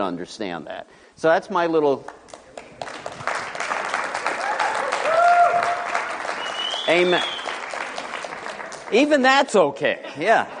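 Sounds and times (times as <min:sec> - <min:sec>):
speech: 0:00.0 - 0:02.4, 0:06.9 - 0:07.4, 0:08.9 - 0:10.5
audience applauding: 0:02.5 - 0:09.5
whistle or cheer: 0:04.6 - 0:07.6.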